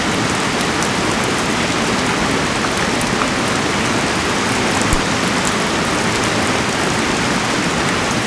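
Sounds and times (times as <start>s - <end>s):
rain in nature: 0.0s - 8.2s.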